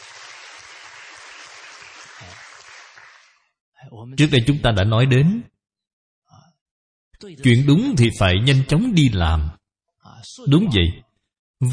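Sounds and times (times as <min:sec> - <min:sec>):
applause from a sizable audience: 0:00.0 - 0:03.5
speech: 0:03.8 - 0:05.5, 0:07.2 - 0:11.0, 0:11.6 - 0:11.7.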